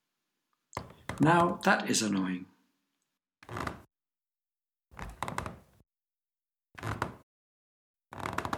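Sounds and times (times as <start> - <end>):
speech: 1.2 - 2.5
footsteps creaking and thumping down wooden stairs: 3.4 - 3.9, 5.0 - 5.8, 6.8 - 7.2, 8.1 - 8.5.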